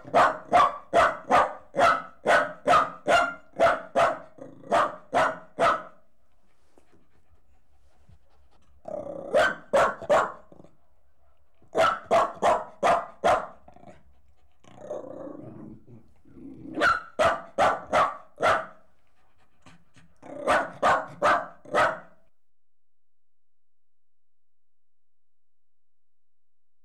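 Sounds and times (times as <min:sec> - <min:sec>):
Jack Russell Terrier crossed with Corgi barking while leaping: 0:00.0 - 0:06.1, 0:09.2 - 0:10.5, 0:11.7 - 0:13.6, 0:16.7 - 0:18.8, 0:20.3 - 0:22.2.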